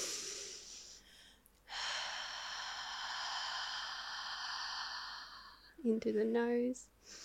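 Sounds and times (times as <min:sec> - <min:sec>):
slow exhale during a breathwork exercise: 0:00.0 - 0:05.7
speech: 0:05.8 - 0:07.2.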